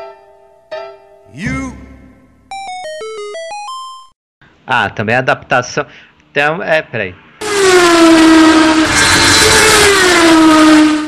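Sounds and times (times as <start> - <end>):
speech: 1.3 - 1.9, 4.7 - 7.2, 7.9 - 8.7
motorcycle roaring past at high speed: 7.4 - 11.0.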